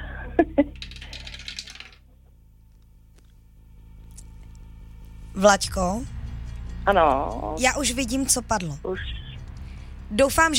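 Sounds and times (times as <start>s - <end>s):
small die clattering down through a dice tower: 0.7s - 2.0s
speech: 5.4s - 6.2s, 6.9s - 9.2s, 10.1s - 10.5s.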